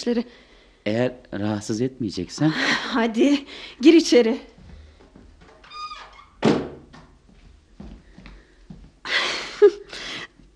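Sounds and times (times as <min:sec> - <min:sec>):
speech: 0:00.0 - 0:04.5
quiet shuffling: 0:04.5 - 0:05.7, 0:07.0 - 0:09.0
brief high door squeak: 0:05.6 - 0:06.7
door swinging shut with a solid thunk: 0:06.0 - 0:07.0.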